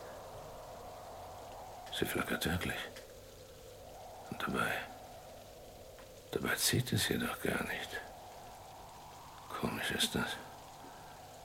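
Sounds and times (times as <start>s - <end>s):
howling wind on a stormy night: 0.0s - 11.4s
steady rain on a stormy night: 0.0s - 11.4s
speech: 2.0s - 3.0s, 4.4s - 4.9s, 6.3s - 8.1s, 9.9s - 10.4s.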